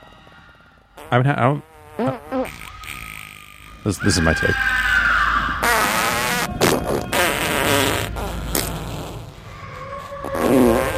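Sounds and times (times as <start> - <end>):
looping fake fart sound effect: 1.0 - 3.7, 5.6 - 9.4, 10.0 - 10.9
speech: 1.1 - 2.6, 3.8 - 4.8.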